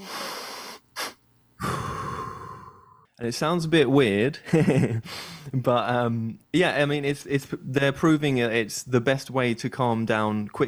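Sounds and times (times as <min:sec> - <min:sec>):
person exhaling forcefully through mouth: 0:00.0 - 0:03.0
person inhaling through nose for calming breathing: 0:00.0 - 0:03.0, 0:05.0 - 0:05.5
speech: 0:03.2 - 0:10.6.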